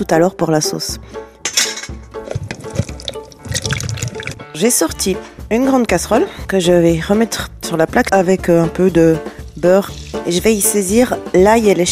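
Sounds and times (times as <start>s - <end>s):
speech: 0.0s - 1.3s, 4.6s - 11.9s
juice draining from canned fruit into a container: 2.1s - 4.5s, 9.3s - 10.5s.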